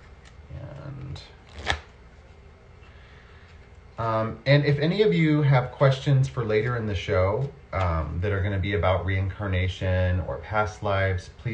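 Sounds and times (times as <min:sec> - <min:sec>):
playing cards being handled and shuffled: 0:00.0 - 0:02.4
speech: 0:01.2 - 0:01.7, 0:04.0 - 0:11.5.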